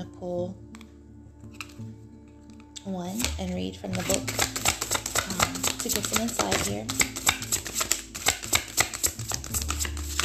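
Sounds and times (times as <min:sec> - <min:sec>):
speech: 0:00.0 - 0:00.7, 0:02.8 - 0:04.6, 0:05.8 - 0:07.1
oracle cards being shuffled by hand: 0:01.5 - 0:01.8, 0:02.5 - 0:10.2.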